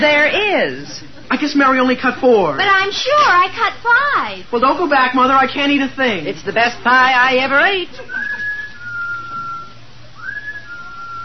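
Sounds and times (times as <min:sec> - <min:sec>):
speech: 0:00.0 - 0:08.2
low hum: 0:00.0 - 0:11.2
thin steady high-pitched whistle: 0:08.0 - 0:11.2.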